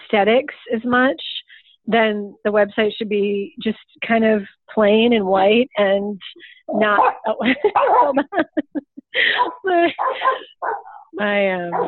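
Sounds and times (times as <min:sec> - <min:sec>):
speech: 0:00.1 - 0:11.8
dog barking at the mail carrier: 0:06.9 - 0:08.2, 0:09.4 - 0:11.0
laughter: 0:07.3 - 0:10.6.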